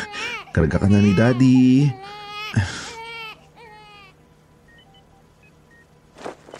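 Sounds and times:
baby boy wailing and whimpering while held by his father: 0:00.0 - 0:04.2
speech: 0:00.6 - 0:02.8.

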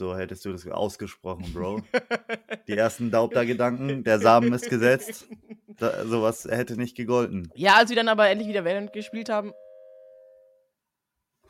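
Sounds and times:
speech: 0:00.0 - 0:09.6
quiet noise: 0:00.0 - 0:10.7
laughter: 0:01.4 - 0:06.2
doorbell chime: 0:08.7 - 0:10.7.

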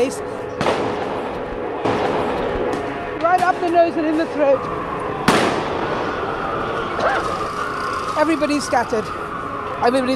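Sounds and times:
speech: 0:00.0 - 0:00.4, 0:03.5 - 0:04.8, 0:07.0 - 0:07.6, 0:08.2 - 0:09.2, 0:09.8 - 0:10.1
police grenades exploding at a riot: 0:00.6 - 0:03.6, 0:05.2 - 0:06.1.

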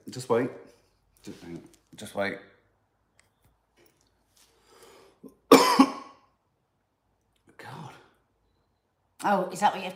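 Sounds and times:
speech: 0:00.1 - 0:02.5, 0:09.2 - 0:09.9
person coughing: 0:05.5 - 0:06.2.

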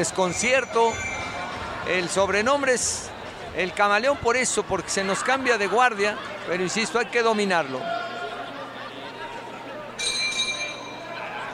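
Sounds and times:
speech: 0:00.0 - 0:01.2, 0:01.8 - 0:08.2
laughter: 0:00.0 - 0:10.0, 0:11.0 - 0:11.5
crowd chatter at a boxing bout: 0:00.0 - 0:11.5
boxing ring bell signalling the start of a round: 0:10.0 - 0:11.2.

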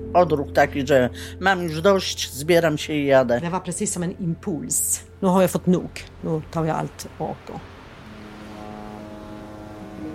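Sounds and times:
speech: 0:00.0 - 0:07.7
ferry engine drone underway at sea: 0:03.9 - 0:10.1.

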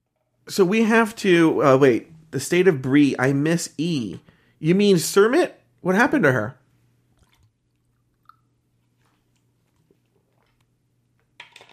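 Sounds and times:
speech: 0:00.5 - 0:06.6
person drinking water: 0:07.1 - 0:10.8.

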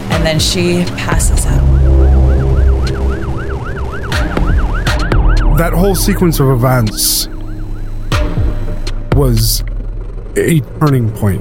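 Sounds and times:
loud rumbling street traffic: 0:00.0 - 0:11.3
speech: 0:00.2 - 0:02.0, 0:05.6 - 0:07.3, 0:09.2 - 0:09.7, 0:10.4 - 0:11.3
emergency vehicle siren yelping: 0:01.0 - 0:09.1.

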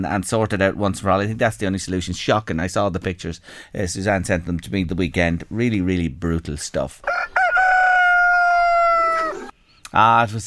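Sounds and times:
speech: 0:00.0 - 0:07.4, 0:09.9 - 0:10.4
rooster crowing: 0:07.0 - 0:09.5.

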